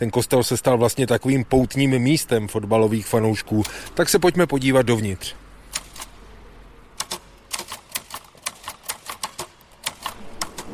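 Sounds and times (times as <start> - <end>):
speech: 0.0 - 5.5
typewriter keys clacking: 5.7 - 6.1, 7.0 - 10.7.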